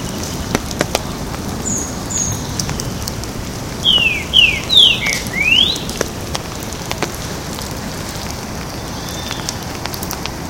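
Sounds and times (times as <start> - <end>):
steady crackling patter: 0.0 - 10.4
green-winged saltator singing in a botanical garden in Porto Alegre: 3.8 - 5.8.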